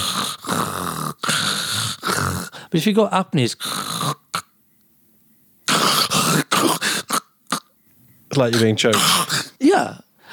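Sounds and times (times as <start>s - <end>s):
voice imitating snoring: 0.0s - 2.6s, 3.5s - 4.5s, 5.7s - 7.7s, 8.4s - 9.6s
speech: 2.7s - 3.8s, 8.4s - 10.0s.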